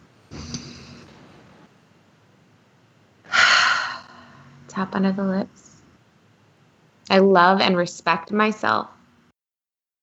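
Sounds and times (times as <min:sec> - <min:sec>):
deep breaths during a guided tapping and affirmation exercise: 0:03.3 - 0:04.6
speech: 0:04.8 - 0:05.7, 0:07.1 - 0:09.0.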